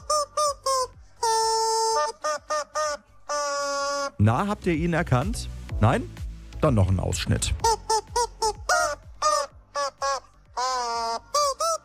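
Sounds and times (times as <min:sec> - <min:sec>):
rubber chicken dog toy squeezed: 0:00.0 - 0:04.2, 0:07.6 - 0:11.8
speech: 0:04.2 - 0:07.7.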